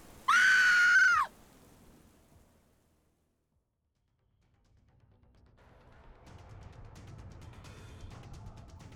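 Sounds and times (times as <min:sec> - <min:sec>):
loud high-pitched scream from a woman: 0:00.3 - 0:01.3.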